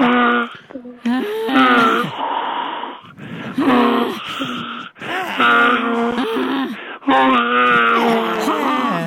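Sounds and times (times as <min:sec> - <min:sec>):
voice imitating moaning and donkey-like braying: 0:00.0 - 0:02.2, 0:03.6 - 0:09.0
person gasping: 0:00.6 - 0:07.1.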